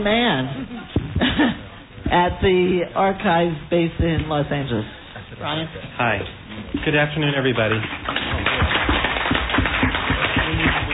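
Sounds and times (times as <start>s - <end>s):
speech: 0.0s - 8.1s
audience clapping: 6.8s - 10.9s.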